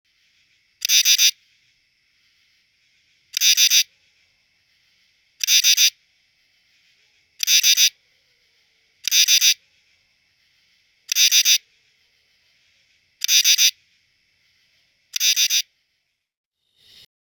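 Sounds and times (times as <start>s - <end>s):
true katydid calling: 0.8s - 1.4s, 3.1s - 3.9s, 5.4s - 6.0s, 6.8s - 8.0s, 9.0s - 9.6s, 11.0s - 11.7s, 13.2s - 13.8s, 15.1s - 15.7s.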